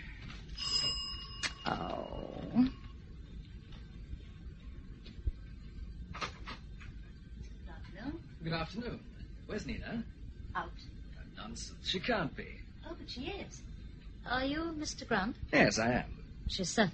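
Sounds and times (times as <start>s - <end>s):
doorbell ringing: 0.6s - 2.6s
speech: 8.6s - 10.9s, 11.5s - 13.7s, 14.2s - 16.9s.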